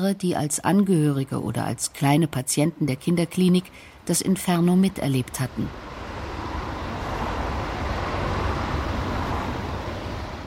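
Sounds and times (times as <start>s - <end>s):
speech: 0.0s - 5.9s
steady roar of road traffic near a hospital: 4.9s - 10.4s.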